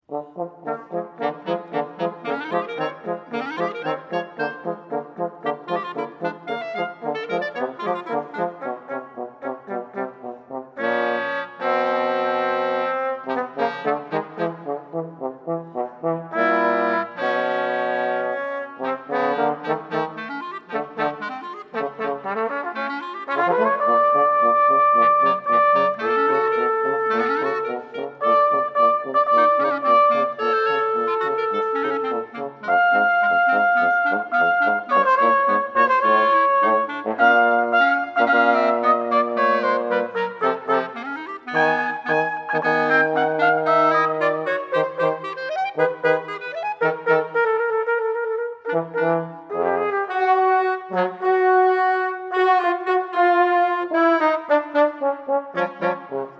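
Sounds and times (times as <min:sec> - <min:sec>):
clarinet: 0:00.0 - 0:56.3
trumpet: 0:00.0 - 0:56.3
trombone: 0:00.1 - 0:56.3.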